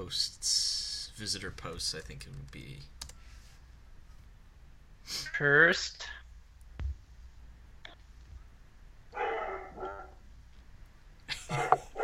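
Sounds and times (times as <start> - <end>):
speech: 0.0 - 3.0, 5.1 - 6.2, 11.5 - 11.8
dog barking excitedly: 9.1 - 10.2, 11.6 - 12.0.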